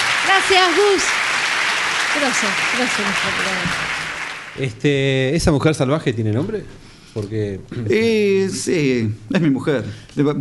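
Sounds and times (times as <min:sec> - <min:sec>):
audience applause at a live show: 0:00.0 - 0:04.7
speech: 0:00.4 - 0:01.2, 0:02.1 - 0:04.0, 0:04.6 - 0:10.3.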